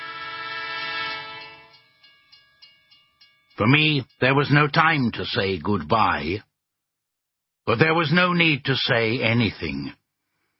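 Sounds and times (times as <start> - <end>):
tram sounding its horn: 0.0 - 1.8
tram wheels clacking over the rails: 0.1 - 5.9
speech: 3.6 - 6.5, 7.7 - 10.0.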